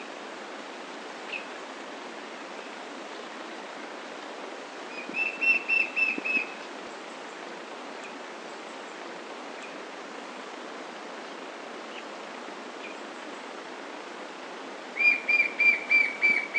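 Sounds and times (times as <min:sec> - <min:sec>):
steady hiss: 0:00.0 - 0:16.5
White-shouldered fire-eye Pyriglena leucoptera whistling: 0:05.0 - 0:06.5, 0:15.0 - 0:16.5.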